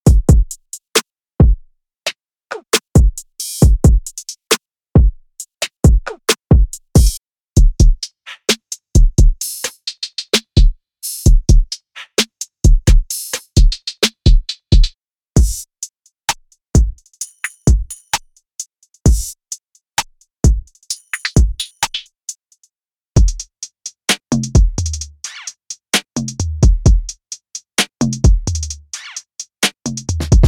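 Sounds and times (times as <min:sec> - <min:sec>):
RB drum beat: 0:00.0 - 0:00.6, 0:01.4 - 0:01.6, 0:02.8 - 0:04.2, 0:05.0 - 0:08.0, 0:09.0 - 0:09.4, 0:11.3 - 0:11.7, 0:12.7 - 0:15.7, 0:16.8 - 0:17.0, 0:17.6 - 0:18.3, 0:19.1 - 0:19.4, 0:20.0 - 0:22.0, 0:23.2 - 0:25.3, 0:26.0 - 0:30.4.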